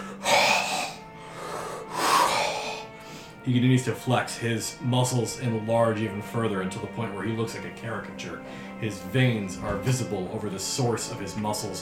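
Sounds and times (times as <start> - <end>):
loud breathy gasps: 0.0 - 3.4
speech: 3.4 - 11.7.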